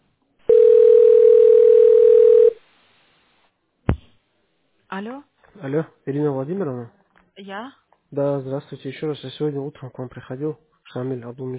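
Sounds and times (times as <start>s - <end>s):
telephone dial tone: 0.5s - 2.6s
speech: 5.0s - 11.5s.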